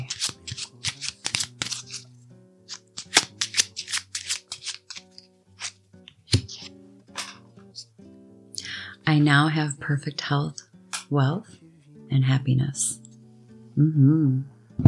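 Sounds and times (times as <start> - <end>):
deck of cards being shuffled: 0.0 - 7.9
speech: 9.1 - 13.0, 13.8 - 14.8.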